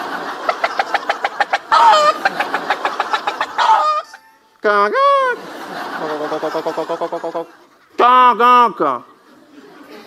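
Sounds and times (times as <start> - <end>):
person imitating a hen's cackle after laying an egg: 0.4 - 5.4, 6.0 - 7.6
speech: 4.6 - 5.1, 6.0 - 9.1.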